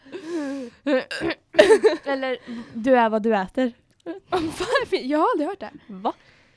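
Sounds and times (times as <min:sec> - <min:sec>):
person hiccuping: 0:00.9 - 0:01.8
speech: 0:02.1 - 0:06.4.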